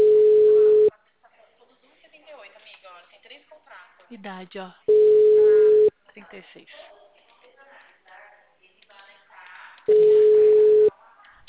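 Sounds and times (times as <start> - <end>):
steady telephone tone on a call: 0.0 - 0.9, 4.9 - 5.9, 9.9 - 10.9
speech: 4.2 - 4.9, 6.2 - 6.9.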